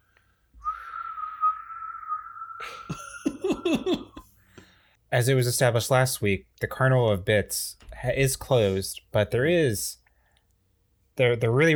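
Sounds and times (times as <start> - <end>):
long steady whistled note: 0.6 - 2.7
laughter: 2.6 - 4.2
speech: 3.7 - 4.1, 5.1 - 10.0, 11.2 - 11.7.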